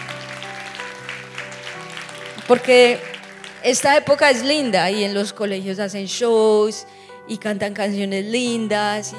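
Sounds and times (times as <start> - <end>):
crowd applauding during a worship gathering: 0.0 - 4.6
held keyboard or organ chords droning: 0.0 - 5.6
speech: 2.5 - 9.1.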